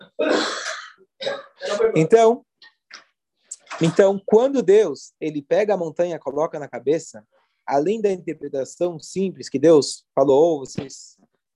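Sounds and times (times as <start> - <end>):
harsh raspy throaty coughing: 0.0 - 2.0
speech: 1.8 - 2.5, 3.8 - 11.3.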